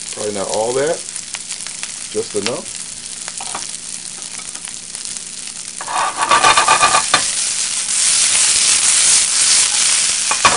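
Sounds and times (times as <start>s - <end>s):
vegetables sizzling in a hot pan: 0.0s - 10.5s
speech: 0.2s - 1.1s, 2.1s - 2.8s
scraping stirs and clatters: 5.8s - 7.3s.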